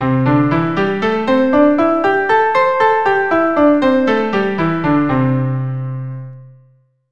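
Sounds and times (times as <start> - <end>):
keyboard playing C major pentatonic scale over two octaves: 0.0 - 6.5.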